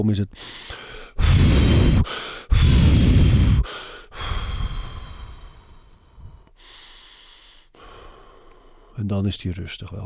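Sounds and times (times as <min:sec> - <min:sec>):
speech: 0:00.0 - 0:03.0, 0:09.0 - 0:10.0
forceful exaggerated exhales by a person getting into an ice bath: 0:00.5 - 0:08.5.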